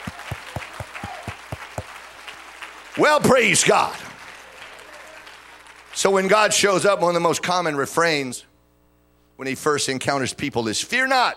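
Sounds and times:
church congregation clapping hands in unison during worship: 0.0 - 6.6
speech: 3.0 - 4.1, 6.0 - 8.5, 9.4 - 11.3.

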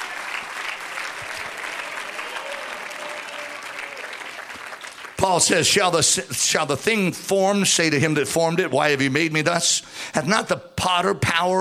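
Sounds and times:
church audience clapping: 0.0 - 6.1
speech: 5.2 - 11.5.

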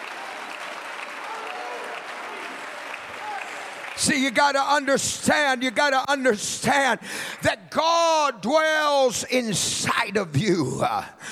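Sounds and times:
audience clapping hands: 0.0 - 7.6
speech: 4.0 - 11.3.

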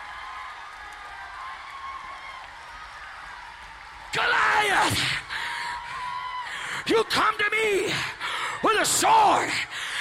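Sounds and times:
large crowd clapping: 0.0 - 6.4
speech: 7.0 - 9.9.

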